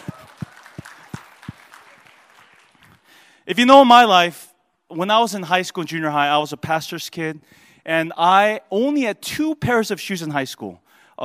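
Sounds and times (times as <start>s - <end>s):
audience applause: 0.0s - 3.2s
speech: 3.5s - 11.2s.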